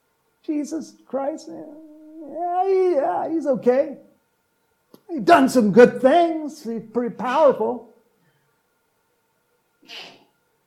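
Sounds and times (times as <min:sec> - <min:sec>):
speech: 0:00.5 - 0:04.1, 0:05.1 - 0:07.9, 0:09.9 - 0:10.2
sneeze: 0:09.8 - 0:10.3.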